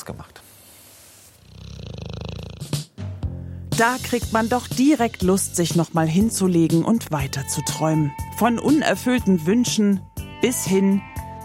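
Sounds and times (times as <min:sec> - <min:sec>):
speech: 0:00.0 - 0:00.4, 0:03.8 - 0:11.4
dog snoring in its dog bed: 0:01.3 - 0:03.0.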